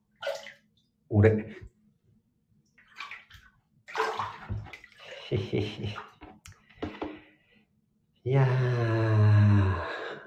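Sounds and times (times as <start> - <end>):
water sloshing in a bathtub: 0.0 - 1.0, 2.6 - 7.5
speech: 1.1 - 1.7, 5.3 - 6.1, 8.2 - 9.2.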